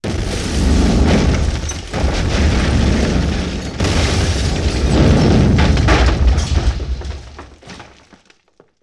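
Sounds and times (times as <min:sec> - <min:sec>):
explosions: 0:00.0 - 0:07.6
debris scattering: 0:00.0 - 0:08.8.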